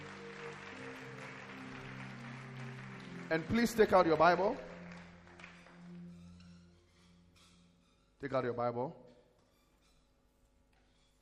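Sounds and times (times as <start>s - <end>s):
audience clapping: 0.0s - 6.2s
sustained low keyboard or organ tones: 0.0s - 9.0s
speech: 3.3s - 4.7s, 8.2s - 9.0s.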